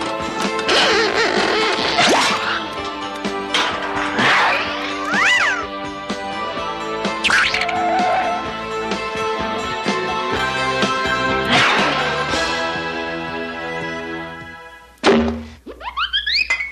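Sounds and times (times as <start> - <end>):
busy musical backdrop: 0.0 - 16.0
cat yowling in drawn-out wavering wails: 5.0 - 5.7, 7.3 - 8.5.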